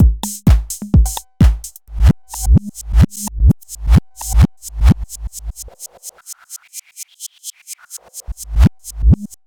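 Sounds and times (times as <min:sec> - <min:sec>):
drum machine scatter effect: 0:00.0 - 0:08.7.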